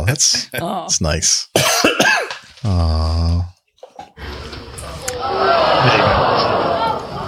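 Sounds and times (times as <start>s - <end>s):
speech: 0.1s - 3.5s
person coughing from a nut stuck in the throat: 1.6s - 2.5s
person clearing throat after a nut gets stuck: 1.6s - 3.5s
laughter: 4.9s - 7.2s.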